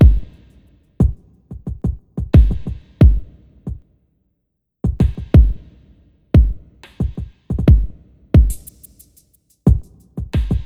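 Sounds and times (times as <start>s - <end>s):
chillout industrial drum sample: 0.0s - 3.3s, 4.9s - 5.6s, 6.4s - 10.6s.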